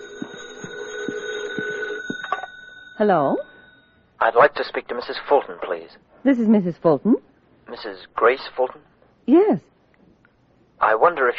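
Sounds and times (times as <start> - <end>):
telephone ringing: 0.0 - 4.1
speech: 3.0 - 3.5, 4.2 - 9.7, 10.8 - 11.3.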